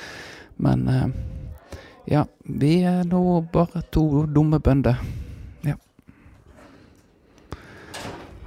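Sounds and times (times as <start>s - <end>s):
speech: 0.6s - 1.3s, 2.1s - 5.8s
door shutting with a solid thud: 7.8s - 8.4s.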